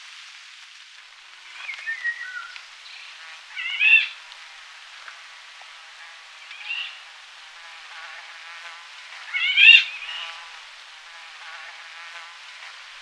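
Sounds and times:
soft background hiss: 0.0s - 12.9s
Eurasian golden oriole singing fluty whistled phrases: 1.6s - 4.1s.

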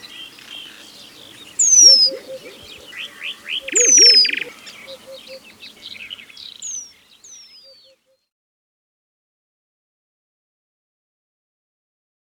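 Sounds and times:
buzzy rapid trills from other birds: 0.0s - 7.9s
white-crowned penduline tit giving thin high downward-sliding whistles: 3.7s - 4.4s.

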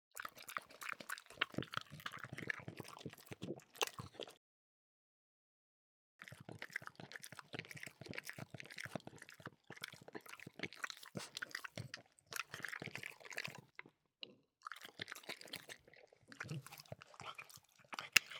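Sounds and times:
French bulldog eating, crunching and chewing: 0.2s - 4.4s, 6.2s - 13.9s, 14.6s - 18.3s.

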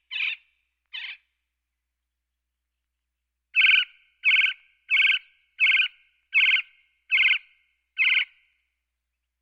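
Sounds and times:
Gila woodpecker harsh churring calls: 0.1s - 1.2s, 3.6s - 7.4s, 8.0s - 8.3s.

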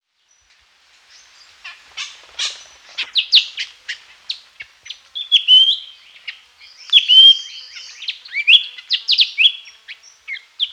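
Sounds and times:
Lesser Racket-tailed Drongo song of chirps, clicks and whistles: 6.7s - 10.7s.

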